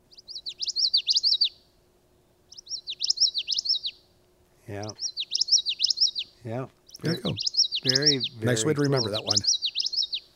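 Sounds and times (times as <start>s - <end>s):
small thicket bird singing witchity song: 0.0s - 1.8s, 2.4s - 4.1s, 4.7s - 10.3s
speech: 4.7s - 5.1s, 6.4s - 9.6s.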